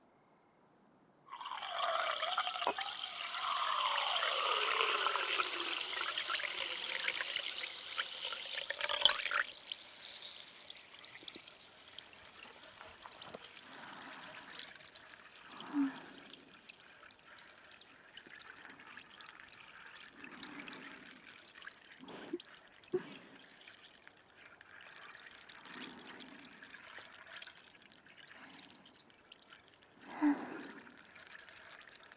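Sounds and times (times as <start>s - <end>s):
carbonated drink bubbles fizzing in a glass: 1.3s - 32.1s
carbonated drink poured into a new glass: 1.3s - 32.1s.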